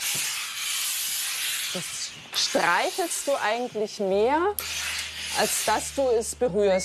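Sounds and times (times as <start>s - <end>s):
steam iron hissing steam over fabric: 0.0s - 6.5s
speech: 1.7s - 4.8s, 5.4s - 6.8s.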